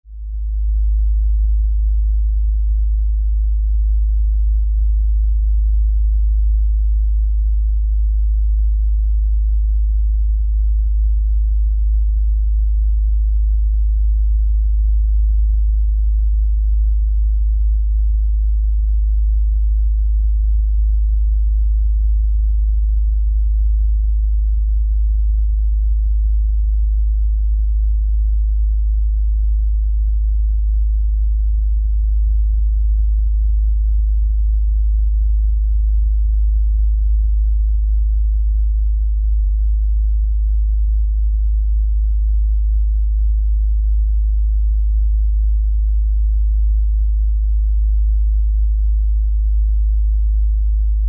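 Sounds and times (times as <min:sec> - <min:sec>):
LFE low bass rumble: 0:00.0 - 0:51.0.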